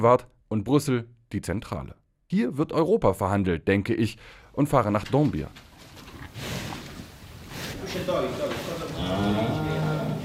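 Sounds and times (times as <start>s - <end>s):
speech: 0.0s - 5.7s
noisy shuffling background in a barn: 4.8s - 10.2s
cows mooing in a barn: 8.1s - 10.2s.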